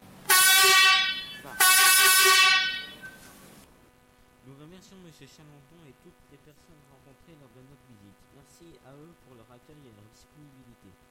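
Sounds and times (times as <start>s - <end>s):
coach bus horn honking: 0.2s - 3.2s
speech: 4.8s - 11.0s.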